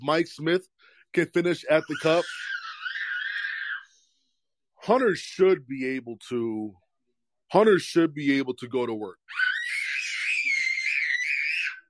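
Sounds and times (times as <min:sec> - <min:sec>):
speech: 0:00.0 - 0:02.5, 0:04.8 - 0:06.8, 0:07.5 - 0:09.4
person screaming: 0:01.8 - 0:03.9, 0:09.3 - 0:11.8.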